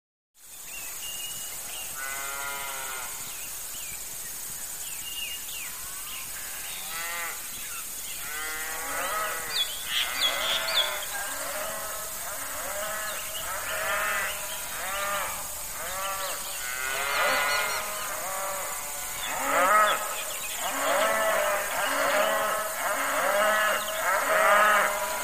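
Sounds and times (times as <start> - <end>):
birds in pasture: 0.5 - 25.2
cows in pasture: 8.2 - 25.2.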